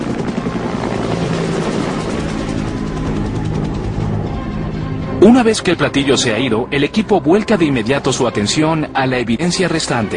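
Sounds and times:
Sea Stallion helicopter lifting a slung load on a cargo cable: 0.0s - 10.1s
speech: 5.2s - 10.1s.

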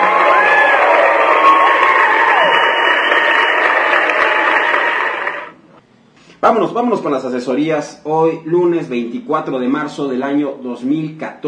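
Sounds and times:
people whooping: 0.0s - 5.5s
crowd cheering and applause: 0.0s - 5.6s
speech: 6.5s - 11.4s.

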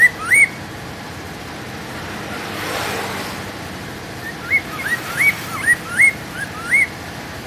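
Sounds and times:
Hwamei whistling: 0.0s - 0.6s, 4.2s - 7.0s.

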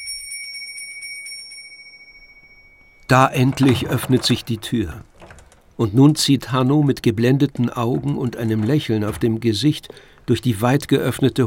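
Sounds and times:
small silver handbell rung rapidly for Christmas gift-giving in a family home: 0.0s - 2.8s
speech: 3.1s - 5.1s, 5.8s - 11.4s.

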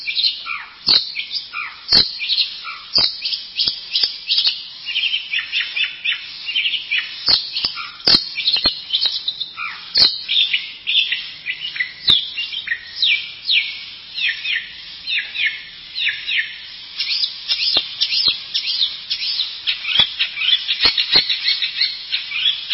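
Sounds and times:
bird singing whistles and chirps: 0.0s - 22.7s
sharp clicks: 7.3s - 8.8s.

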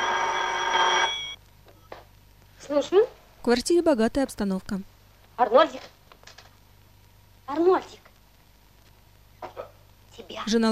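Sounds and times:
electric telephone ringing: 0.0s - 1.4s
speech: 2.7s - 6.0s, 7.5s - 8.0s, 10.2s - 10.6s.

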